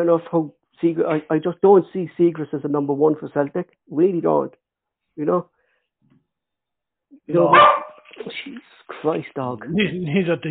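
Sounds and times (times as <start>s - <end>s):
speech: 0.0s - 4.6s, 5.2s - 5.6s, 7.2s - 10.4s
dog barking: 7.5s - 8.0s.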